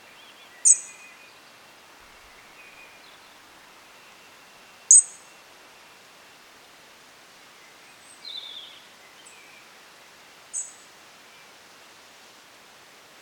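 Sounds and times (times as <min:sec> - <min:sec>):
faint hiss: 0:00.0 - 0:13.2
European robin Erithacus rubecula ticking calls: 0:00.6 - 0:01.0, 0:04.9 - 0:05.3.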